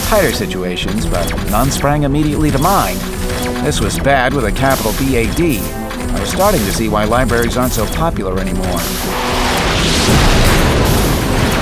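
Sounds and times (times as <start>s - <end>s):
speech: 0.1s - 10.2s
loud explosion: 9.4s - 11.6s.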